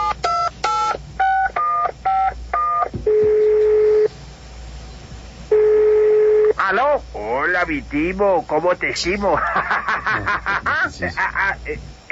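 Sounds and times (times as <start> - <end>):
telephone keypad dialing tones: 0.0 - 4.1
telephone ringing tone as a call connects: 0.0 - 4.1, 5.5 - 6.6
speech: 7.5 - 11.9
laughter: 9.2 - 11.9.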